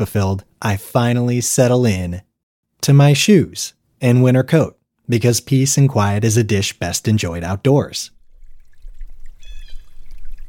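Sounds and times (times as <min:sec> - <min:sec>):
speech: 0:00.0 - 0:08.2
babbling brook flowing: 0:08.1 - 0:10.4
faint high bird chirp: 0:09.4 - 0:10.2.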